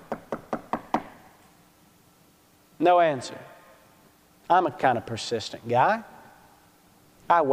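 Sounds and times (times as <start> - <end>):
knocking on a door: 0.0 - 1.2
speech: 2.8 - 3.5, 4.5 - 6.1, 7.3 - 7.5.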